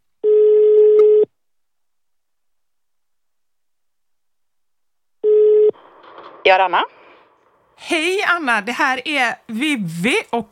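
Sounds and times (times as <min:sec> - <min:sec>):
outgoing call ringback tone: 0:00.2 - 0:01.3, 0:05.2 - 0:05.8
speech: 0:06.5 - 0:07.0, 0:07.8 - 0:10.4.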